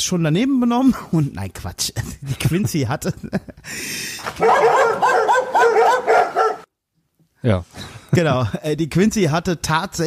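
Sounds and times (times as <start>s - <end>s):
speech: 0.0s - 6.1s, 7.4s - 10.0s
laughter: 2.0s - 4.3s, 7.9s - 8.7s
dogs barking and yipping excitedly at play: 4.3s - 6.7s.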